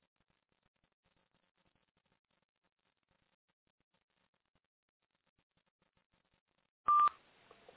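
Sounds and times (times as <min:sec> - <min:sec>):
electronic beep of someone joining a conference call: 0:06.9 - 0:07.2.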